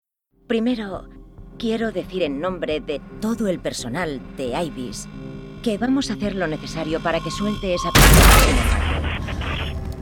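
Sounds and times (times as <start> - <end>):
speech: 0.5 - 9.8
gunshot fired at a computer monitor: 8.0 - 9.8.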